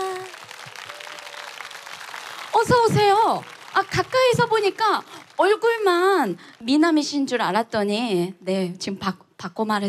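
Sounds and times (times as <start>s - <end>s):
audience applause: 0.0s - 6.8s
speech: 2.6s - 9.8s.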